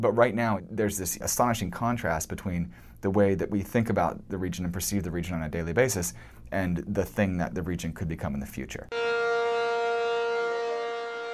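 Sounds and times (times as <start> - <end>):
speech: 0.0 - 9.7
emergency sirens at an oil refinery during a fire as a shelter-in-place alarm: 8.9 - 11.3.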